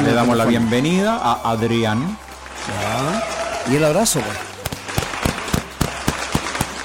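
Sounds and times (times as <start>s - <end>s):
speech: 0.2s - 4.5s
applause: 2.1s - 6.8s
sharp claps: 4.6s - 6.8s.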